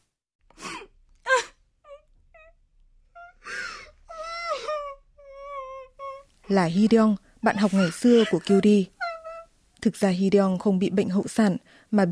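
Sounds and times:
woman crying aloud with gasping breaths and wails: 0:00.6 - 0:02.6, 0:03.2 - 0:06.3, 0:07.4 - 0:09.5
speech: 0:06.5 - 0:09.0, 0:09.8 - 0:12.0.

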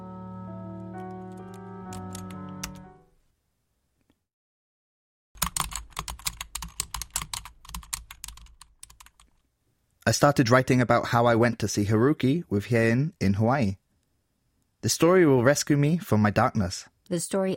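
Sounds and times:
sustained musical tone: 0:00.0 - 0:03.1
rapid typing on a computer keyboard: 0:01.0 - 0:02.8, 0:05.4 - 0:09.4
speech: 0:10.1 - 0:13.8, 0:14.8 - 0:17.5.

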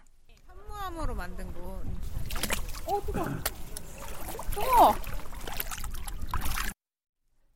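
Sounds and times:
speech: 0:00.9 - 0:03.6, 0:04.6 - 0:05.2
water sloshing as person steps into a warm-water basalt pool: 0:01.9 - 0:06.8
person exclaiming: 0:02.9 - 0:03.4, 0:04.6 - 0:05.0.

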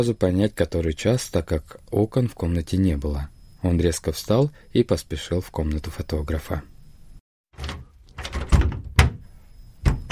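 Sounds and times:
speech: 0:00.0 - 0:06.7, 0:07.6 - 0:07.8
locked door thunking and rattling against its frame as the handle is pulled: 0:07.6 - 0:10.1.

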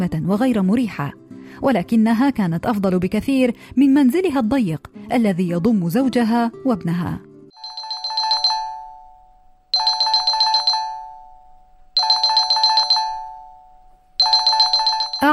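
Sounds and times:
speech: 0:00.0 - 0:07.3
telephone ringing with electronic trilling: 0:07.5 - 0:15.3.

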